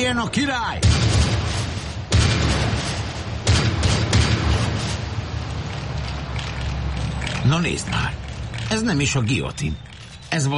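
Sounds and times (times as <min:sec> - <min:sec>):
speech: 0:00.0 - 0:01.1, 0:07.4 - 0:10.5
constant dense rumble of battle noise: 0:00.0 - 0:10.5
rifle shots in an ambush on an escorted wagon: 0:00.8 - 0:05.0.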